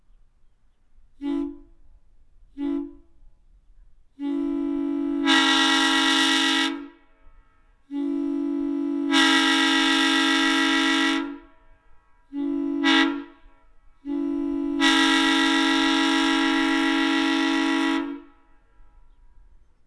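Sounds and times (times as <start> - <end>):
horn: 4.2 - 7.0, 7.9 - 11.5, 12.3 - 18.4.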